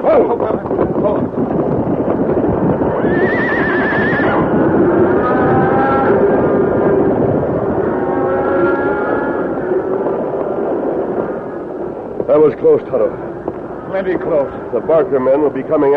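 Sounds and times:
stampeding cattle herd rumbling with pounding hooves: 0.0s - 15.9s
speech: 0.1s - 1.4s, 12.4s - 13.2s, 13.9s - 15.9s
horses whinnying and neighing: 2.8s - 10.2s.

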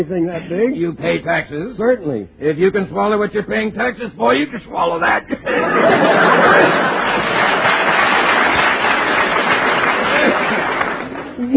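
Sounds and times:
speech: 0.0s - 7.4s
audience laughter: 5.3s - 11.3s
crowd applause: 5.8s - 11.5s.

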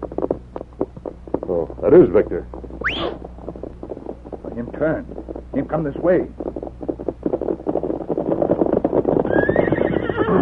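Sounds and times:
hooves clip-clopping: 0.0s - 10.4s
speech: 1.5s - 2.6s, 4.6s - 6.4s
riderless white horse whinnying: 2.8s - 3.2s, 9.2s - 10.4s.

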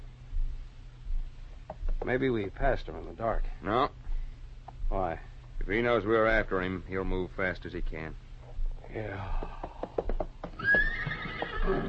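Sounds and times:
speech: 1.7s - 4.0s, 4.9s - 8.2s, 8.9s - 9.7s, 11.7s - 11.8s
horse hoof clops: 9.3s - 11.8s
restless horses neighing and whinnying: 9.4s - 11.8s
horses snorting breaths: 10.6s - 11.8s.

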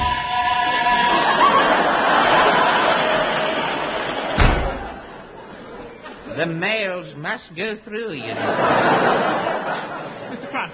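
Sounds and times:
laughter: 0.0s - 6.6s, 8.1s - 10.7s
door flung open with a sharp bang: 4.3s - 5.1s
speech: 6.4s - 10.7s.

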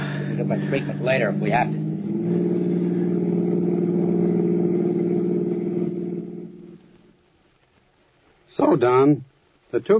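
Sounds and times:
car engine drone while being driven: 0.0s - 7.3s
speech: 0.5s - 2.4s, 8.8s - 9.9s.

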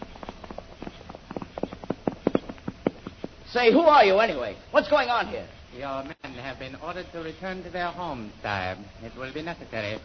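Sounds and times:
hoofbeats of a white horse ridden by a man: 0.0s - 5.3s
speech: 3.5s - 10.0s.

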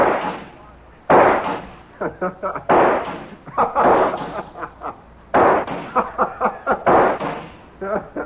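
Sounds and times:
crackling pops: 0.0s - 1.8s, 2.7s - 4.6s, 5.3s - 6.1s, 6.8s - 7.7s
gunshots from a gun: 0.0s - 1.8s, 2.7s - 4.6s, 5.3s - 7.7s
laughter: 1.9s - 2.7s, 3.3s - 5.1s, 5.8s - 7.0s, 7.8s - 8.2s.

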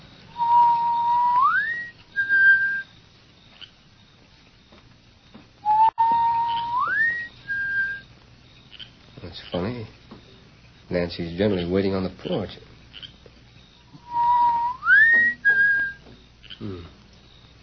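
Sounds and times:
person whistling a signal: 0.4s - 2.8s, 5.6s - 8.0s, 14.0s - 16.0s
speech: 11.0s - 12.7s.

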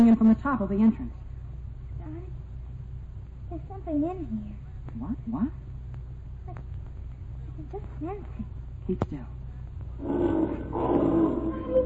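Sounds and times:
speech: 0.1s - 1.2s, 3.5s - 5.7s, 7.6s - 9.4s, 10.0s - 11.8s
mountain lion growling deep and rumbling: 10.0s - 11.8s.

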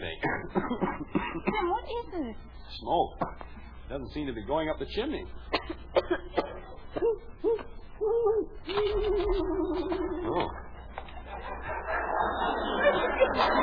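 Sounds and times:
laughter: 0.2s - 1.4s, 6.7s - 13.6s
speech: 2.2s - 10.4s
owl hooting: 6.8s - 10.7s.

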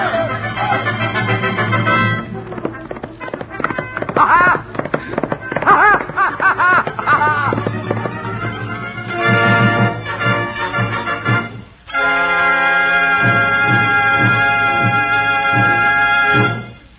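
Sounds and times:
several men shouting excitedly: 0.0s - 2.3s, 4.1s - 4.7s, 5.6s - 7.7s
horse galloping hoofbeats: 0.0s - 11.8s, 13.0s - 16.7s
laughter: 4.1s - 8.5s.

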